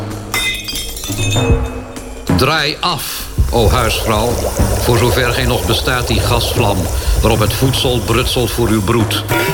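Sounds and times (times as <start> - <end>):
beer glass clinking against a hard surface: 0.3 - 1.8
speech: 1.3 - 1.8, 2.4 - 9.5.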